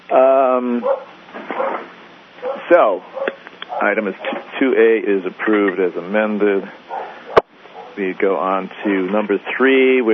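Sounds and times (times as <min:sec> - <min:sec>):
dog barking with a whiny tone: 0:00.8 - 0:04.5, 0:06.9 - 0:08.0
speech: 0:02.7 - 0:06.9, 0:08.0 - 0:10.1.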